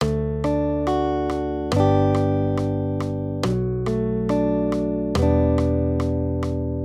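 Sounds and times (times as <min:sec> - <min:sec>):
guitar accompaniment of major triads D-G at 140 BPM: 0:00.0 - 0:06.8.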